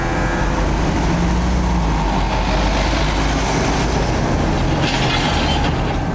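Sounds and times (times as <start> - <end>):
tractors and big trucks rolling past on a street: 0.0 - 6.1.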